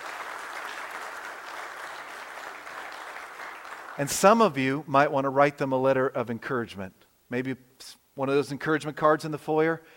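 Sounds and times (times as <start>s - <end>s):
large group applauding: 0.0s - 4.4s
speech: 4.0s - 9.9s.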